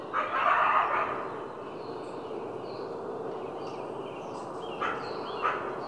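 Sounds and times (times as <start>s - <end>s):
coyote barking: 0.1s - 1.3s, 4.8s - 5.8s.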